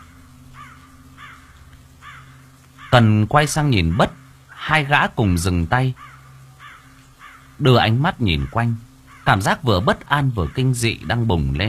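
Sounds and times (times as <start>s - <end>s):
black crows cawing from high tree branches at night: 0.0s - 3.1s, 3.8s - 4.6s, 5.9s - 7.6s, 8.3s - 11.1s
low hum: 0.0s - 11.6s
speech: 2.9s - 6.1s, 7.6s - 11.6s.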